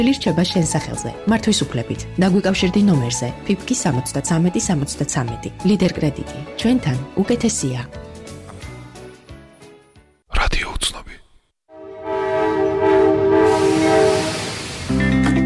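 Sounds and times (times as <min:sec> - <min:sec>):
speech: 0:00.0 - 0:08.1
double-decker European passenger train horn blast: 0:11.7 - 0:15.2.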